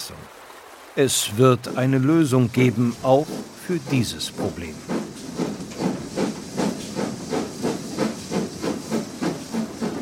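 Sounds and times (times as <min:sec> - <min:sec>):
speech: 0:00.1 - 0:00.4, 0:01.0 - 0:05.1
steam locomotive hissing and chuffing crossing the Panama isthmus: 0:02.6 - 0:09.9.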